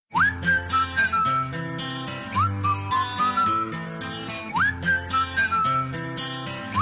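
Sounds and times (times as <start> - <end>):
whistle message tone: 0.1 - 1.6, 2.3 - 6.0.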